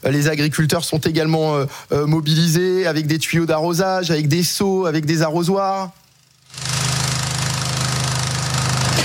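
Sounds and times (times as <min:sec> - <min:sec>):
speech: 0:00.0 - 0:06.0
diesel tractor engine running during forest fire fighting: 0:06.4 - 0:09.0.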